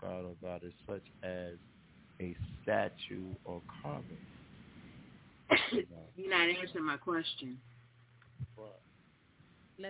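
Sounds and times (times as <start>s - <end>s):
murmured voice sounds: 0.0s - 1.5s, 2.2s - 4.2s
speech: 0.4s - 4.4s, 5.7s - 7.7s, 8.5s - 8.9s
sneeze: 5.5s - 5.9s.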